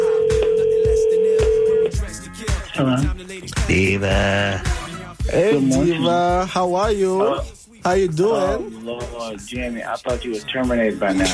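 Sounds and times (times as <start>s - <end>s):
steady telephone tone while a call is placed: 0.0s - 1.9s
speech: 2.8s - 11.3s.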